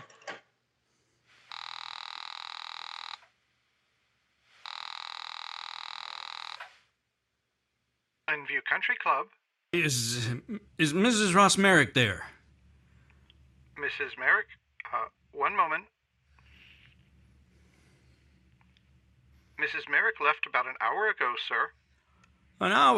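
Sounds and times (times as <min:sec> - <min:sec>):
telephone ringing tones on the line: 0:01.5 - 0:03.2, 0:04.7 - 0:06.6
speech: 0:08.3 - 0:12.3, 0:13.9 - 0:14.6, 0:15.5 - 0:15.9, 0:19.6 - 0:21.8, 0:22.6 - 0:22.9.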